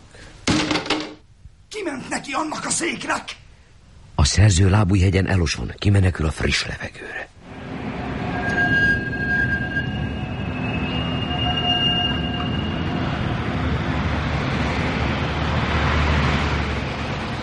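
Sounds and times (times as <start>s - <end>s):
speech: 1.8s - 3.4s, 4.2s - 7.4s
tram rumbling past at night: 7.4s - 17.4s
tram bell ringing at night: 7.5s - 14.1s.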